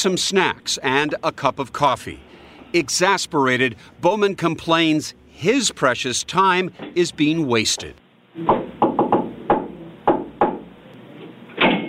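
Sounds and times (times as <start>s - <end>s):
speech: 0.0s - 8.6s
knocking on a door: 8.4s - 10.7s.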